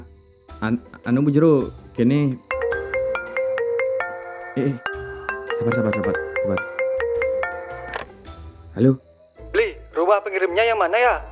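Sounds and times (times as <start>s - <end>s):
speech: 0.6s - 2.5s, 4.6s - 5.0s, 5.6s - 6.7s, 8.8s - 9.1s, 10.1s - 11.3s
mobile phone ringtone: 2.5s - 8.2s.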